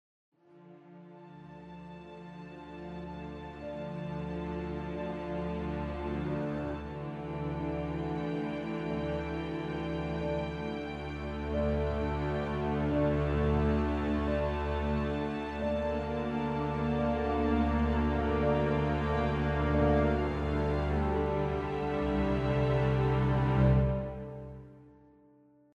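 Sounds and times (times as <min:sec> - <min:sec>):
sad piano ambience: 0:01.3 - 0:25.3.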